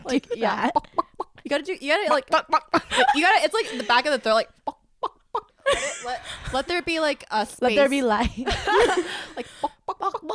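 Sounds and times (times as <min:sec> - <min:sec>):
speech: 0:00.1 - 0:04.6, 0:05.7 - 0:10.3
person doing a chicken impersonation with clucks and squawks: 0:00.6 - 0:01.5, 0:04.6 - 0:05.6, 0:09.8 - 0:10.3.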